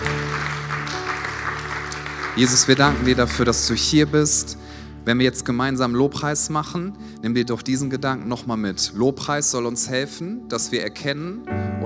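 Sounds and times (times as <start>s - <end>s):
crowd applause: 0.0s - 4.5s
speech: 2.4s - 11.7s.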